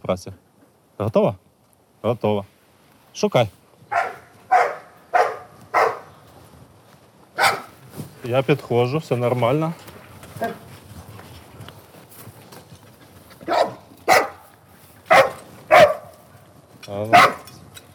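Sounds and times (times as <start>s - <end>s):
speech: 0.1s - 1.4s, 2.0s - 2.5s, 3.2s - 3.6s, 8.2s - 10.6s
search and rescue dog barking to mark a found mock victim: 3.9s - 6.2s, 7.4s - 7.8s, 13.4s - 14.5s, 15.1s - 16.3s, 17.1s - 17.5s.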